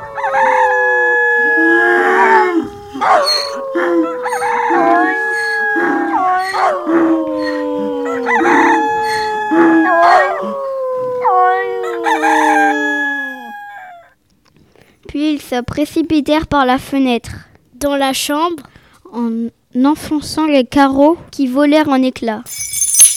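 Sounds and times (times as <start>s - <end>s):
roosters crowing: 0.0s - 10.6s, 11.2s - 14.1s
speech: 15.6s - 22.6s.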